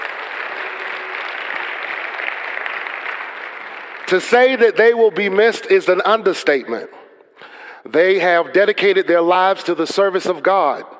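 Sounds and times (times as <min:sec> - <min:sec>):
audience applause from a large group: 0:00.0 - 0:04.6
speech: 0:04.1 - 0:07.0, 0:07.8 - 0:10.9.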